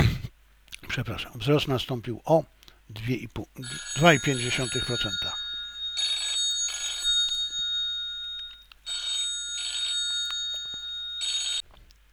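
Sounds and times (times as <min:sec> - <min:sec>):
speech: 0:01.0 - 0:05.4
telephone ringing with a bright electronic trill: 0:03.6 - 0:11.7.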